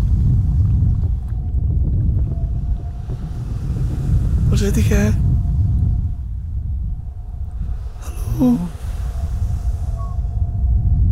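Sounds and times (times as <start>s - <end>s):
water and waves churning: 0.0s - 10.6s
heavy storm wind roaring and buffeting the microphone: 0.0s - 11.0s
speech: 4.6s - 5.2s, 8.4s - 8.7s.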